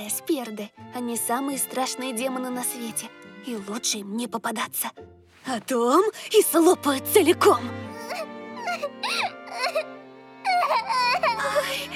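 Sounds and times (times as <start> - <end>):
speech: 0.1 - 8.0
baby crying: 7.9 - 11.9.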